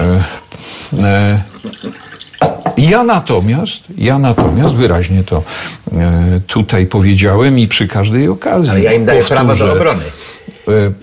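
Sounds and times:
speech: 0:00.2 - 0:11.0
water being poured for drinking: 0:01.2 - 0:02.8.

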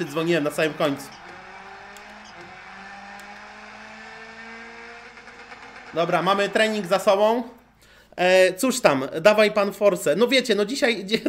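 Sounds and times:
speech: 0:00.0 - 0:01.2, 0:06.0 - 0:07.6, 0:08.2 - 0:11.2
racing video game car engine droning: 0:00.0 - 0:08.1.

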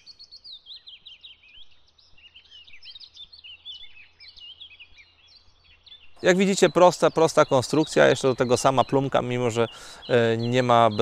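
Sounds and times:
tits and magpies calling at a garden bird bath: 0:00.0 - 0:11.0
speech: 0:06.2 - 0:11.0.

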